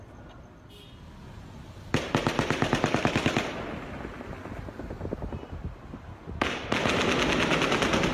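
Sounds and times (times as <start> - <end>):
rapid automatic machine-gun fire during a mass shooting: 1.9 - 4.0, 6.4 - 8.1.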